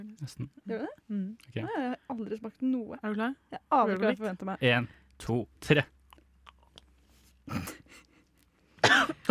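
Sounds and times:
speech: 0.0 - 6.0, 7.5 - 7.8
person coughing after inhaling protein powder: 8.8 - 9.3.

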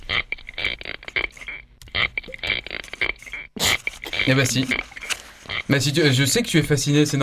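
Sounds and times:
spiny lobster rasping underwater recorded with a hydrophone: 0.0 - 5.8
speech: 4.2 - 5.0, 5.7 - 7.2.

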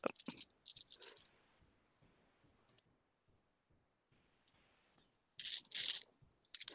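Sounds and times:
plastic dice clattering as someone rummages through a pile of dice: 0.1 - 1.3, 5.4 - 6.7.

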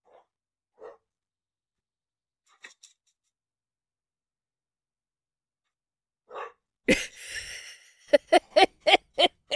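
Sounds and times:
dog barking excitedly: 0.0 - 1.1, 6.3 - 6.6
laughter: 6.9 - 9.5.

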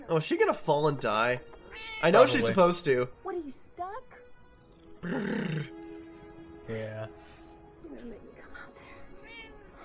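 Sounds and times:
speech: 0.1 - 4.2, 5.0 - 5.8, 6.7 - 7.3
cat meowing: 1.6 - 2.5, 9.1 - 9.8.

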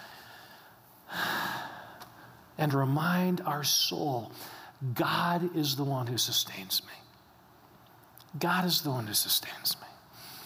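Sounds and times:
deep breath: 0.0 - 2.0, 4.4 - 4.8, 10.2 - 10.4
speech: 2.6 - 7.0, 8.3 - 9.9.

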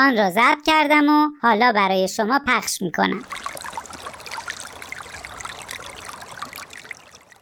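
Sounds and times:
speech: 0.0 - 3.5
river water flowing: 3.2 - 7.4
small splashes and trickles of river water: 3.2 - 7.4.

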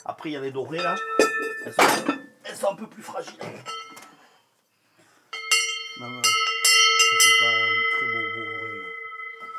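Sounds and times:
speech: 0.0 - 3.9, 6.0 - 6.4, 7.2 - 8.5
cowbell clanking when shaken: 0.7 - 2.4, 3.6 - 4.1, 5.3 - 9.5.

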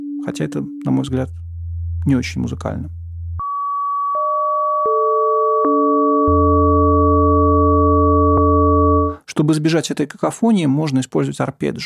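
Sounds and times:
synthesized electronic sine tones one per planet forming a dissonant chord: 0.0 - 9.2
speech: 0.2 - 3.0, 9.4 - 11.8.

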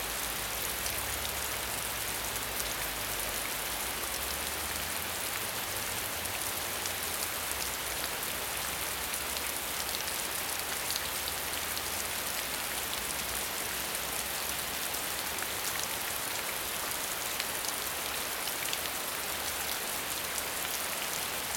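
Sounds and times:
rain: 0.0 - 21.5.

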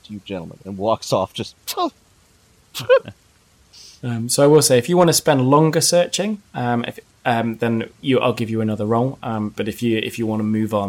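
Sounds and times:
speech: 0.1 - 2.0, 2.8 - 3.2, 3.8 - 10.8
person imitating a cat's sneeze: 2.8 - 3.1.

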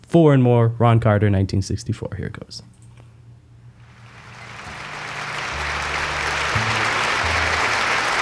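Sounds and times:
low steady bass notes in a live jazz recording: 0.0 - 8.2
speech: 0.1 - 2.7
audience applause at a live jazz concert: 3.8 - 8.2.

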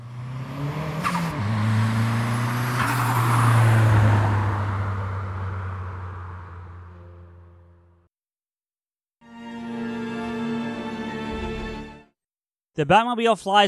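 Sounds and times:
car engine revving and pulling away into the night: 0.0 - 7.6
speech: 12.8 - 13.6.

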